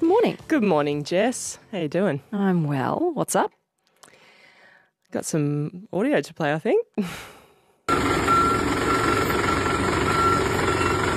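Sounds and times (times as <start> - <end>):
speech: 0.0 - 3.6, 5.1 - 8.2
fire truck heavy engine rumbling: 7.9 - 11.1
fire truck reversing beep: 7.9 - 11.1.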